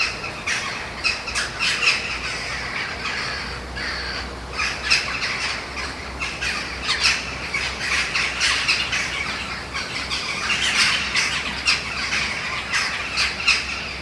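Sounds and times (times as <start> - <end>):
low steady hum: 0.0 - 14.0
several Eurasian jackdaws giving harsh squawking calls: 0.0 - 14.0.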